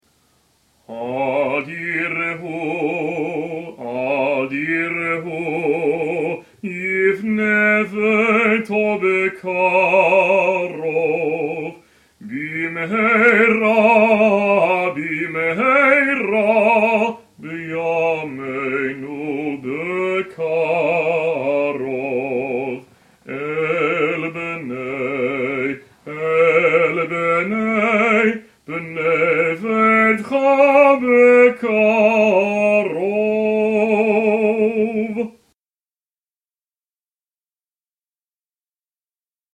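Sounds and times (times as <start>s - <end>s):
person singing a Passover song: 0.8s - 35.6s.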